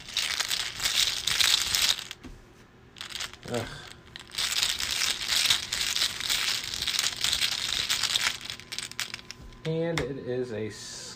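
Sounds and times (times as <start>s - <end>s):
card drawn from a deck rustling during a tabletop card game: 0.0s - 2.2s, 3.0s - 9.7s
speech: 3.5s - 3.9s, 9.6s - 11.0s.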